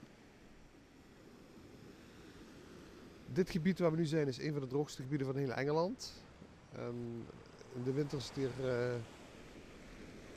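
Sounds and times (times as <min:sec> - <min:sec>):
gentle waves lapping on a beach: 0:00.0 - 0:10.3
speech: 0:03.3 - 0:09.2.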